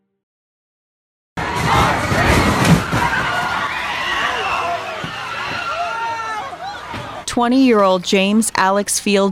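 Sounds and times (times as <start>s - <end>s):
crowd screaming and shouting in panic: 1.4s - 7.3s
speech: 7.4s - 9.2s.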